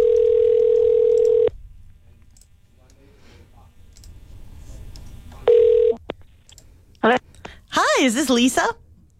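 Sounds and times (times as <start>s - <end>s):
telephone dial tone: 0.0s - 1.5s
speech: 8.0s - 8.8s.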